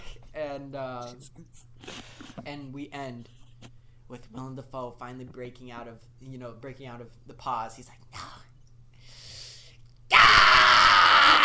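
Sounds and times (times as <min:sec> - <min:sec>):
speech: 0:00.6 - 0:03.4, 0:04.1 - 0:08.3
person imitating a harsh scream: 0:10.1 - 0:11.4.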